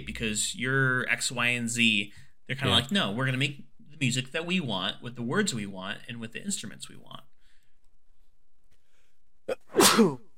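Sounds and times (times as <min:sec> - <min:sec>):
speech: 0:00.2 - 0:07.3, 0:09.8 - 0:10.2
person sneezing: 0:09.5 - 0:10.3.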